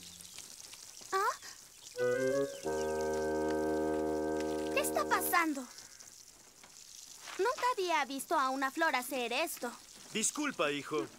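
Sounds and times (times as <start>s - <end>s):
steady morning rain outside the house: 0.0s - 11.1s
rising whistles: 2.0s - 5.4s
sustained bright musical tones: 2.0s - 5.4s
speech: 5.0s - 5.8s, 7.4s - 11.1s.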